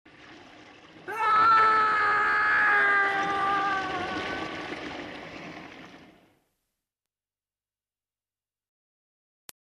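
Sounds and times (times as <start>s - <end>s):
person screaming: 1.1s - 4.6s.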